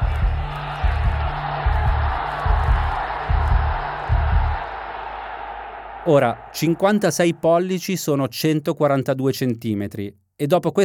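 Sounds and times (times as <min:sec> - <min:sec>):
huge frenzied crowd roaring and cheering at a rally: 0:00.0 - 0:07.7
speech: 0:06.1 - 0:10.8.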